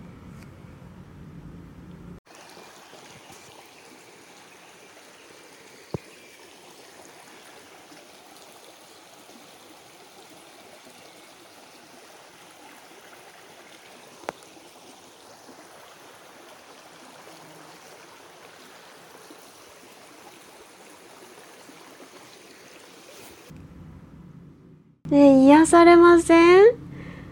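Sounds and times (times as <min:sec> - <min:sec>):
flowing stream water: 0:02.2 - 0:23.5
speech: 0:25.1 - 0:26.8.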